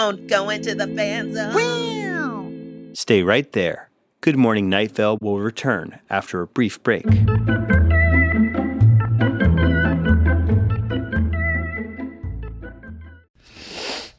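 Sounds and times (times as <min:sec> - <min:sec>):
speech: 0:00.0 - 0:02.1, 0:02.9 - 0:07.7
bright instrumental music with steady bass notes: 0:07.0 - 0:13.3
person sniffing their own armpit: 0:13.4 - 0:14.1.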